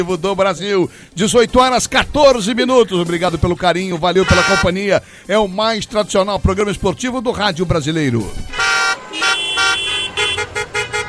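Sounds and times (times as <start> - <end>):
speech: 0.0 - 9.2
car horns honking in busy traffic: 4.2 - 4.9, 8.4 - 11.0
steady hum of vehicles: 8.2 - 11.0.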